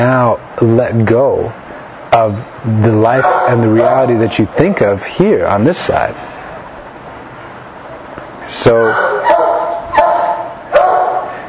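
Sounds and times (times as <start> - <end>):
speech: 0.0 - 6.3, 8.4 - 9.2
very old dog barking: 3.1 - 4.1, 8.8 - 11.4.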